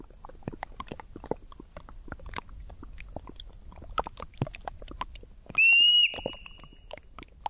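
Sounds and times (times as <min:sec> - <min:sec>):
Olympic marmot whistle: 0:05.6 - 0:06.7.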